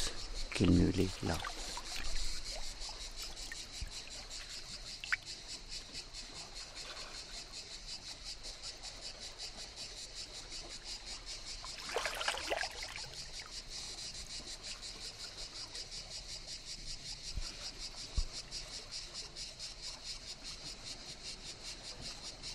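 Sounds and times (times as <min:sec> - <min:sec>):
water sounds at a gravel beach at high tide: 0:00.0 - 0:05.2, 0:11.7 - 0:13.4
cicadas in a pulsing buzzy chorus at a Mediterranean calanque gravel beach: 0:00.0 - 0:22.5
speech: 0:00.6 - 0:01.5.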